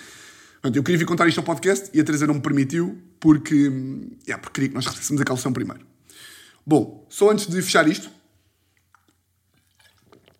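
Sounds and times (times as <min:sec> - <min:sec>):
speech: 0:00.6 - 0:08.2
person sipping water: 0:08.6 - 0:10.3
soft gulp: 0:08.7 - 0:10.3.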